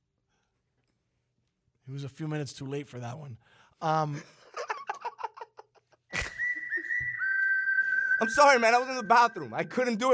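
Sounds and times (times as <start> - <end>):
speech: 1.9 - 4.4, 8.2 - 10.1
person whistling one long steady note: 6.1 - 9.9.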